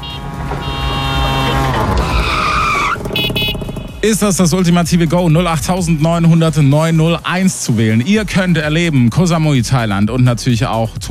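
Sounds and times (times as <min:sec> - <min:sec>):
tuk-tuk tires squealing: 0:00.0 - 0:04.8
tuk-tuk engine revving in a radio jingle: 0:00.0 - 0:07.2
speech: 0:04.0 - 0:11.0.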